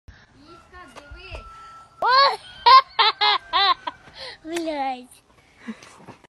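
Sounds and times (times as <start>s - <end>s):
evil baby laugh: 2.6s - 3.9s.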